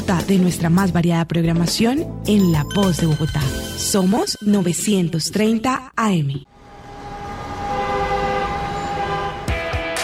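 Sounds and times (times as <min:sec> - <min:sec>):
speech: 0:00.1 - 0:06.5
dense city street noise in Bogotá: 0:06.5 - 0:10.0
vehicle horn blaring: 0:06.7 - 0:10.0.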